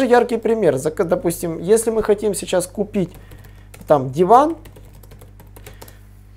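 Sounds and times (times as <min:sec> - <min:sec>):
speech: 0:00.0 - 0:04.7
steady low electrical hum: 0:00.0 - 0:06.3
keyboard typing a search query: 0:03.0 - 0:06.0.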